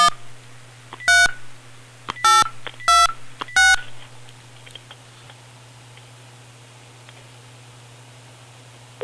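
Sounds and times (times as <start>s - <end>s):
DTMF tones of a phone number dialed at a radio station: 0.0s - 4.8s
faint hiss: 0.0s - 9.0s.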